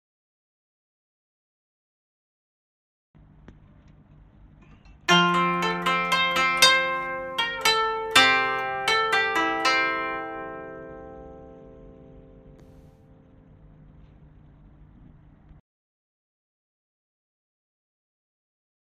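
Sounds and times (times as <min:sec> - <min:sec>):
koto: 0:05.0 - 0:13.7.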